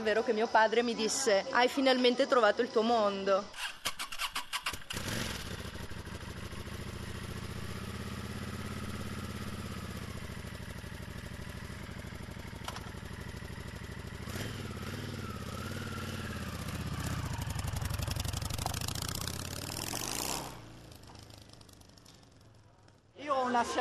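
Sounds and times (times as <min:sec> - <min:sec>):
speech: 0:00.0 - 0:03.8
white motorcycle engine starting and idling: 0:04.2 - 0:23.2.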